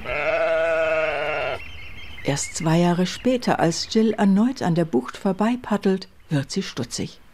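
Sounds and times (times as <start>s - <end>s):
short-fleeced sheep bleating on a beach in the Cromarty Firth: 0.0s - 1.6s
quiet outdoor background: 0.0s - 7.3s
speech: 2.3s - 7.2s.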